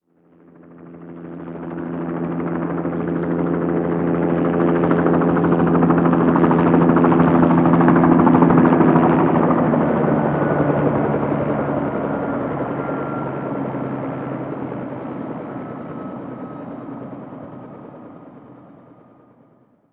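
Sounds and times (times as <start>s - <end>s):
helicopter flyover: 0.1s - 19.9s.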